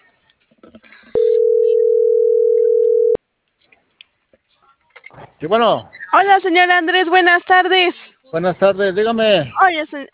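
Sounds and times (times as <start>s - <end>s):
telephone dial tone while a call is being dialed: 1.2s - 3.2s
speech: 5.4s - 10.1s.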